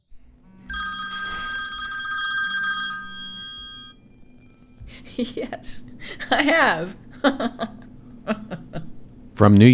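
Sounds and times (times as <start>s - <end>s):
telephone bell ringing with a bright metallic trill: 0.7s - 4.5s
laughter: 4.9s - 9.0s
speech: 5.2s - 8.4s, 9.4s - 9.7s.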